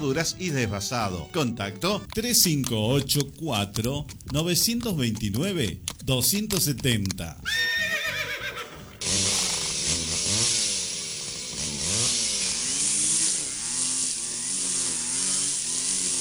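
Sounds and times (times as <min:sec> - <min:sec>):
speech: 0:00.0 - 0:07.7
chainsaw running and revving: 0:00.0 - 0:16.2
horse whinnying and snorting: 0:07.3 - 0:10.8.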